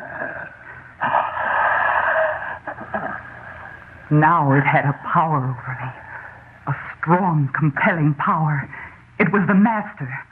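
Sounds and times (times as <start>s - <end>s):
eerie heavy rasping breathing: 0.0s - 4.1s
speech: 4.1s - 6.0s, 6.6s - 10.2s.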